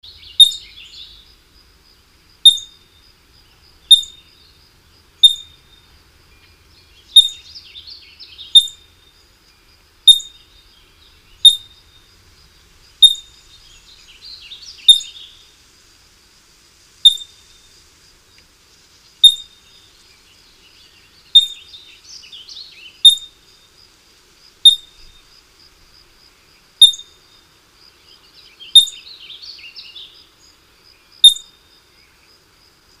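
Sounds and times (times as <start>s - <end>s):
California ground squirrel calling: 0.0s - 1.3s, 2.4s - 3.0s, 3.7s - 4.5s, 5.2s - 5.9s, 7.0s - 9.1s, 10.0s - 12.1s, 12.7s - 15.5s, 17.0s - 17.6s, 19.2s - 19.8s, 21.2s - 23.5s, 24.6s - 25.3s, 26.7s - 27.2s, 28.6s - 30.2s, 31.2s - 31.6s.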